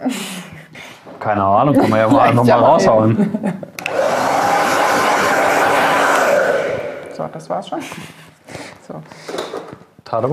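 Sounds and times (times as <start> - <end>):
speech: 0.0 - 0.4, 1.2 - 3.6, 7.3 - 8.2, 10.1 - 10.3
laughter: 1.7 - 7.3
hair dryer blowing: 3.8 - 7.3.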